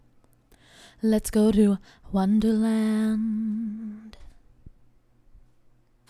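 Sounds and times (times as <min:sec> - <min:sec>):
main vocals: 0:01.0 - 0:04.2.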